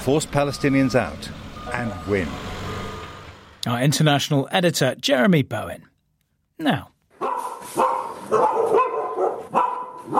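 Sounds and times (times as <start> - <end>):
speech: 0.0 - 2.6, 3.6 - 5.9, 6.6 - 6.9, 7.7 - 8.6
pack of stray dogs barking: 7.2 - 10.1.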